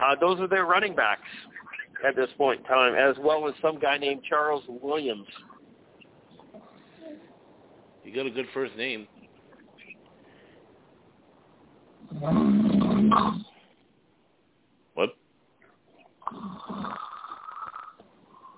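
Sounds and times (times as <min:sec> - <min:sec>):
low noise: 0:00.0 - 0:18.5
speech: 0:00.1 - 0:05.5, 0:08.0 - 0:09.1, 0:12.1 - 0:13.5, 0:15.0 - 0:15.2
loud rough rattling snore: 0:16.2 - 0:18.5.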